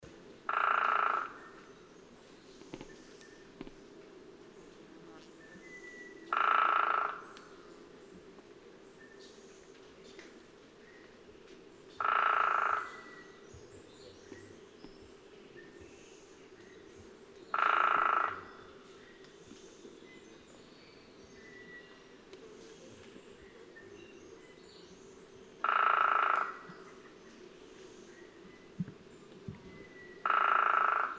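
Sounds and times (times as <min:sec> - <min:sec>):
Hairy Woodpecker Leuconotopicus villosus: 0:00.5 - 0:01.6, 0:06.2 - 0:07.6, 0:12.0 - 0:13.3, 0:17.5 - 0:19.6, 0:25.6 - 0:27.2, 0:28.8 - 0:31.1.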